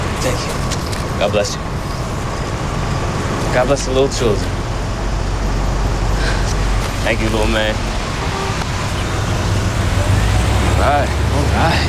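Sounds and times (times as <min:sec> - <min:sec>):
road traffic rumbling as cars start to move: 0:00.0 - 0:11.8
speech: 0:00.2 - 0:00.6, 0:01.2 - 0:01.8, 0:03.6 - 0:04.6, 0:07.0 - 0:07.9, 0:10.8 - 0:11.8.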